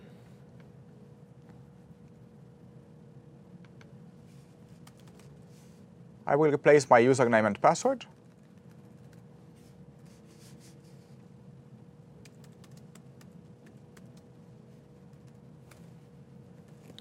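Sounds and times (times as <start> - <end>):
low steady hum: 0.0 - 16.9
computer keyboard clicks from typing: 4.8 - 5.2, 12.2 - 14.3
speech: 6.3 - 8.2.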